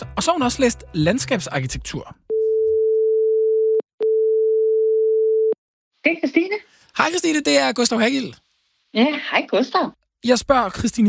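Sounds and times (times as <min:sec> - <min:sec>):
speech: 0:00.2 - 0:02.3, 0:06.0 - 0:11.0
ringing tone of an outgoing telephone call: 0:02.3 - 0:05.6.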